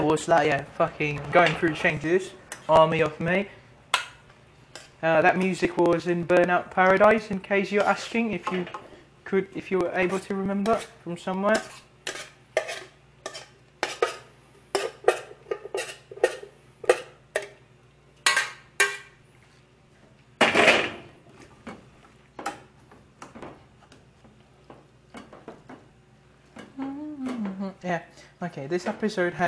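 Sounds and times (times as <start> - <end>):
speech: 0.0 - 3.6, 5.0 - 11.8, 28.6 - 29.4
pots, dishes and cutlery clattering while food is cooked in a kitchen: 11.5 - 17.6, 18.2 - 19.1, 20.4 - 21.1.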